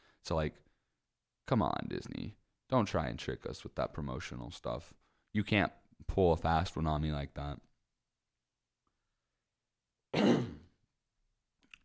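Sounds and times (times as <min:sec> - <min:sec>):
speech: 0:00.2 - 0:00.7, 0:01.5 - 0:07.7
throat-clearing cough: 0:10.1 - 0:10.8.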